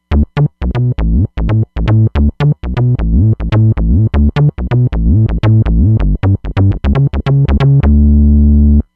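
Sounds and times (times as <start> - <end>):
synth bass from a Roland Fantom XR: 0.0 - 8.9.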